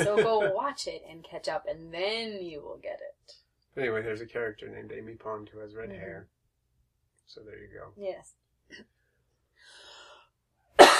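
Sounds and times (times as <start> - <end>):
laughter: 0.0 - 0.6
speech: 0.0 - 6.4, 7.3 - 9.0
faint breathy noise: 9.5 - 10.4
person coughing: 10.8 - 10.9.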